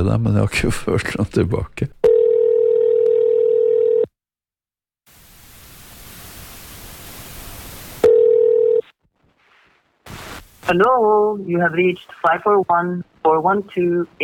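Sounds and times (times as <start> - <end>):
speech: 0.0 - 2.0, 10.7 - 14.2
steady electronic telephone tone: 2.0 - 4.1, 8.0 - 8.9
rising hissy telephone line static: 5.1 - 14.2.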